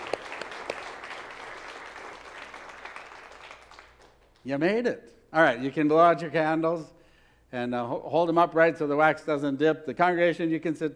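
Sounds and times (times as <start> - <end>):
congregation applauding: 0.0 - 4.5
speech: 4.4 - 10.9.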